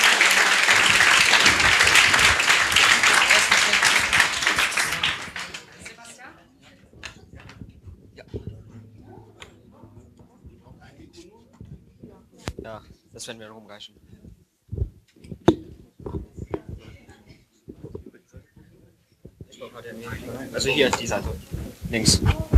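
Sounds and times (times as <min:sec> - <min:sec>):
audience applause as a team is called onto a stage: 0:00.0 - 0:06.2
speech: 0:13.3 - 0:14.2, 0:19.8 - 0:22.4.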